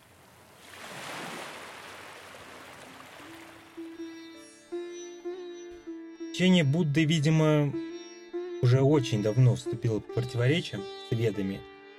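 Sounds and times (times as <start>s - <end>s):
surf washing along a seashore: 0.0s - 3.8s
sustained flute-like melody: 3.2s - 11.9s
speech: 6.4s - 7.8s, 8.6s - 11.7s.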